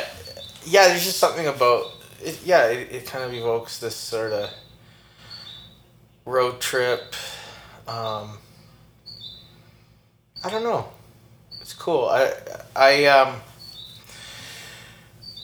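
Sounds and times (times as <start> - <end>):
bird chirping: 0.0 - 9.7, 10.4 - 15.4
speech: 0.7 - 4.6, 6.3 - 8.4, 10.4 - 11.0, 11.7 - 13.5.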